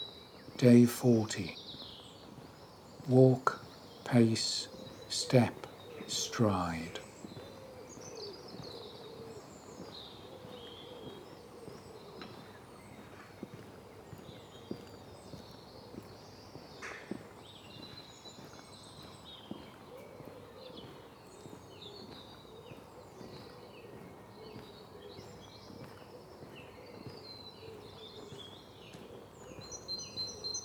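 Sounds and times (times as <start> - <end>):
speech: 0.6 - 1.6, 3.1 - 7.0
pigeons cooing before sunrise: 4.5 - 6.4, 7.1 - 14.8, 19.6 - 29.7.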